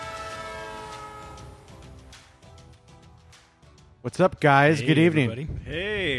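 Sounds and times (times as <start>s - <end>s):
train horn sound effect blast: 0.0s - 2.3s
low rumbling rail noise: 0.0s - 3.1s
speech: 4.0s - 6.1s.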